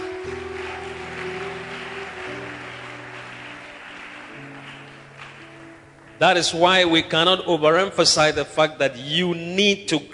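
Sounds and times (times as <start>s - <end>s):
audience clapping: 0.0s - 7.4s
speech: 6.2s - 10.1s.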